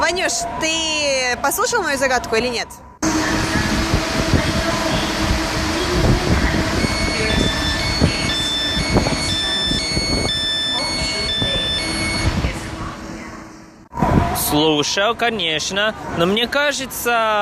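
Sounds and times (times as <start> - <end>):
light metro train rumbling through station: 0.0 - 14.4
speech: 0.1 - 2.9, 14.5 - 17.4
light metro train electric motors whining in stepped tones: 3.0 - 12.8.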